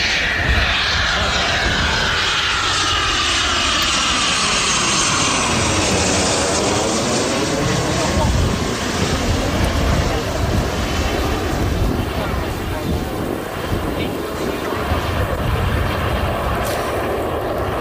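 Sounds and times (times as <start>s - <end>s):
Eurofighter combat jet roaring during air festival training in Gijón: 0.0s - 17.8s.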